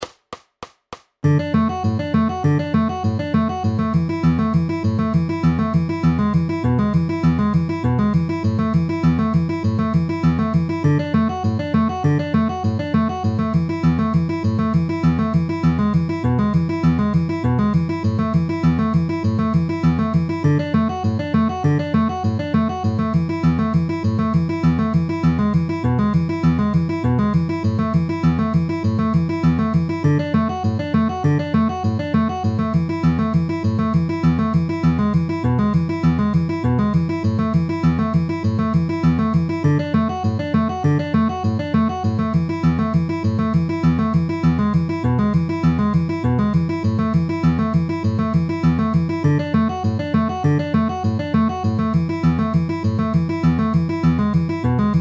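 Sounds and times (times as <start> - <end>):
D A E A inner outer ring notes with alternating bass: 1.2 - 55.0.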